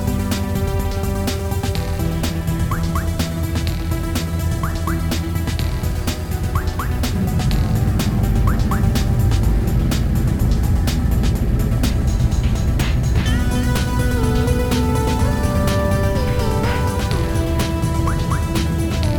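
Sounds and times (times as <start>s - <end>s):
bus engine roaring: 0.0s - 19.1s.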